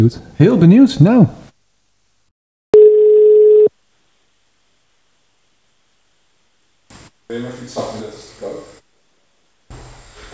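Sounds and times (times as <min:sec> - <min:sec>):
speech: 0:00.0 - 0:01.4, 0:07.3 - 0:08.7
telephone dial tone while a call is placed: 0:02.8 - 0:03.7.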